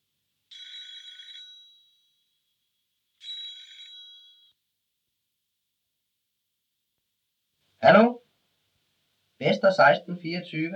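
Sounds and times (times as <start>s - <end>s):
telephone ringing: 0.5s - 2.2s, 3.2s - 4.6s
speech: 7.8s - 8.2s, 9.4s - 10.7s.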